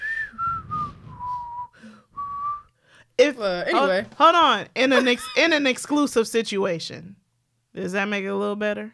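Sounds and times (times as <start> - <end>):
person whistling: 0.0 - 2.7
speech: 3.2 - 7.2, 7.8 - 8.9.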